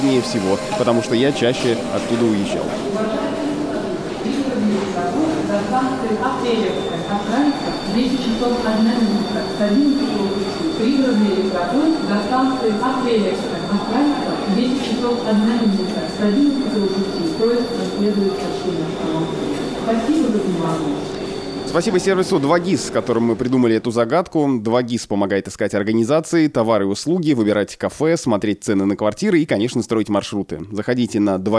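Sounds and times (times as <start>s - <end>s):
rumble of suburban commuter and airport express trains at a large Moscow railway terminus: 0.0s - 23.6s
thin high tone: 0.0s - 23.9s
speech: 0.1s - 3.4s, 4.2s - 31.5s.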